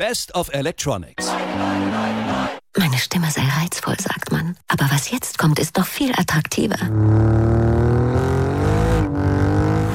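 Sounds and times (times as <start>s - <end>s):
speech: 0.0s - 2.1s, 2.8s - 8.4s
Alfa Romeo car engine revving loudly: 6.9s - 9.9s.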